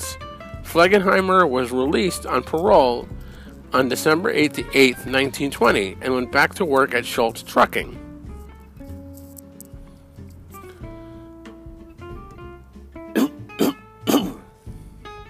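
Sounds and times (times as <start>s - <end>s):
soft music: 0.0s - 15.2s
speech: 0.7s - 8.0s
person coughing from allergies outdoors: 13.2s - 14.5s.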